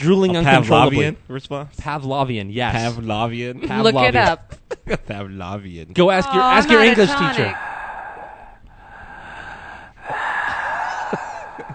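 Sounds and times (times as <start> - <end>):
speech: 0.0 - 7.7
heavy deep breathing from underneath a table: 7.1 - 11.7.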